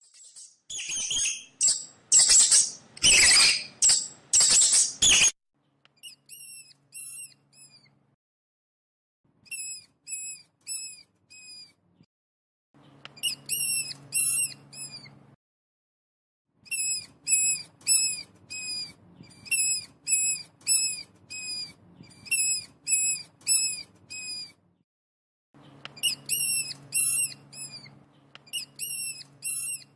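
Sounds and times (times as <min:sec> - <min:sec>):
mouse squeaking: 0:00.0 - 0:05.4, 0:06.0 - 0:07.9, 0:09.4 - 0:11.8, 0:13.1 - 0:15.2, 0:16.6 - 0:24.6, 0:25.8 - 0:29.9.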